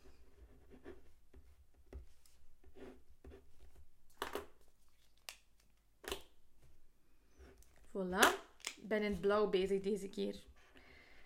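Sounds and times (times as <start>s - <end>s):
pen scratching on paper writing on a hand-drawn mind map: 0.0s - 1.5s, 2.6s - 3.5s
speech: 8.0s - 10.5s.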